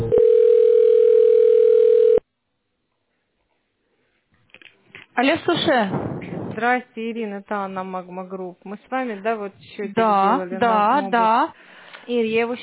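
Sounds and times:
steady mid-pitched telephone tone while an office call is transferred: 0.1s - 2.2s
speech: 5.2s - 12.6s.

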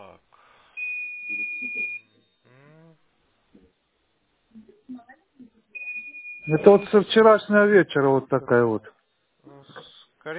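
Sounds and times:
steady high electronic beep from a device: 0.8s - 2.3s, 5.8s - 7.2s
speech: 6.5s - 8.9s.

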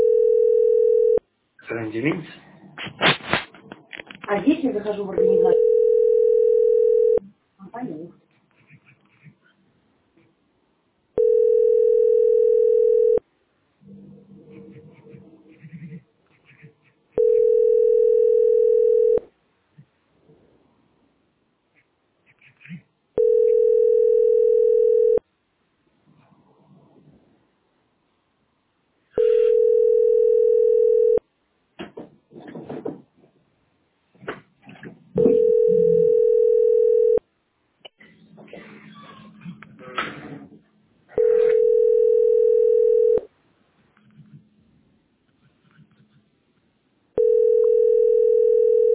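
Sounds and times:
telephone tone: 0.0s - 1.2s, 5.2s - 7.2s, 11.2s - 13.2s, 17.2s - 19.2s, 23.2s - 25.2s, 29.2s - 31.2s, 35.2s - 37.2s, 41.2s - 43.3s, 47.2s - 48.9s
speech: 1.7s - 2.9s, 4.3s - 5.6s.

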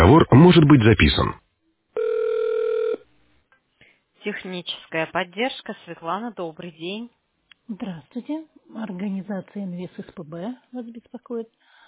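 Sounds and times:
speech: 0.1s - 1.4s, 4.2s - 11.6s
telephone ringback tone while a call is transferred to an operator: 2.0s - 3.0s.

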